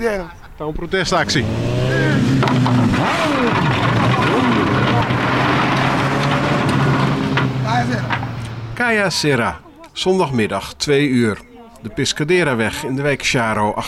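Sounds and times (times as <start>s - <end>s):
speech: 0.0s - 3.8s, 8.8s - 13.8s
crowd talking at a street race: 0.0s - 13.8s
car engines rumbling and revving at a street race on the Piscadera road: 0.7s - 9.6s.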